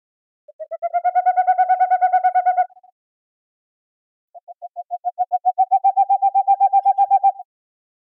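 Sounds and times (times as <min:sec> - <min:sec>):
Boreal owl song of hollow hooting notes: 0:00.5 - 0:02.9, 0:04.4 - 0:07.5.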